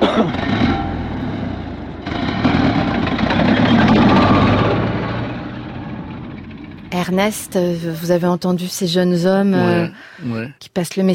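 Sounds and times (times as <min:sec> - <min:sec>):
military vehicle engine running as soldiers drive off: 0:00.0 - 0:08.7
speech: 0:07.0 - 0:11.1.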